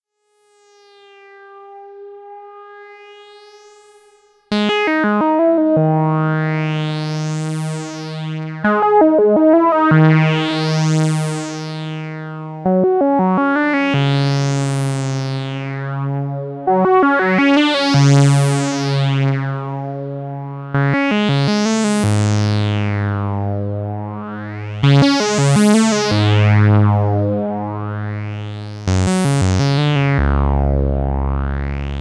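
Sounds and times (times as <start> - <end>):
MS20 synthesizer played live: 0.6 - 31.9.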